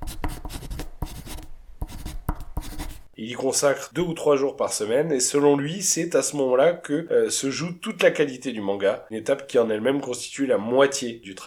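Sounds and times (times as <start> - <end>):
pencil and mechanical pencil scratching on scrap paper in rough draft: 0.0 - 3.1
speech: 3.2 - 11.4.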